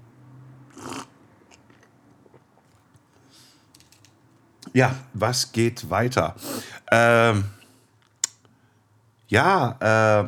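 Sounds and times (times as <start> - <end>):
quiet hum: 0.0 - 10.2
person sipping coffee: 0.7 - 4.0
speech: 4.7 - 7.6, 9.3 - 10.2.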